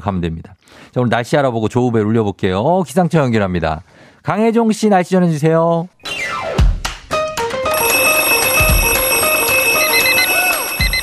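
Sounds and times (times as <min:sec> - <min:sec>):
speech: 0:00.0 - 0:06.5
alarm clock ringing as morning wake-up alarm: 0:07.7 - 0:11.0.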